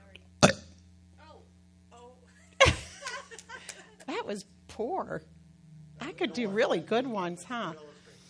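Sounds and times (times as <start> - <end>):
low steady hum: 0.0 - 8.2
person forcing out a fake burp: 0.4 - 0.7
laughter: 2.4 - 4.1
speech: 4.3 - 5.4, 6.0 - 7.9.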